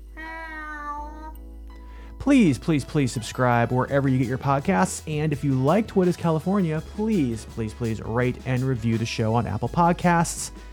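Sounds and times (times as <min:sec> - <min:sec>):
cat giving a long drawn-out meow: 0:00.0 - 0:01.4
speech: 0:02.2 - 0:10.7.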